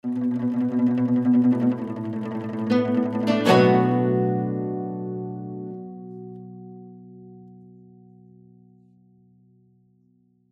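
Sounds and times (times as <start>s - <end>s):
zhongruan ensemble playing: 0.0s - 6.0s.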